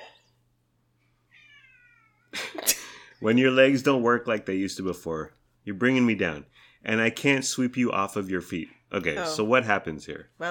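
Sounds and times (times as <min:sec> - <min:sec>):
low steady hum: 0:00.0 - 0:10.4
male cat meowing long and drawn-out: 0:01.3 - 0:02.3
speech: 0:03.2 - 0:10.4.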